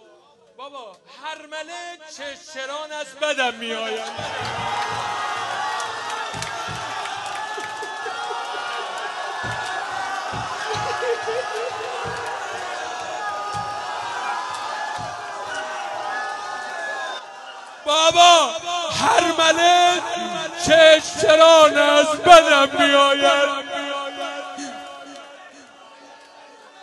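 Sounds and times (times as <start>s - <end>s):
speech: 0.6s - 5.3s, 17.9s - 23.6s
large crowd roaring and cheering: 3.6s - 26.8s
laughter: 3.9s - 15.8s, 19.0s - 20.9s, 22.5s - 25.7s
sharp hand claps: 4.1s - 15.7s.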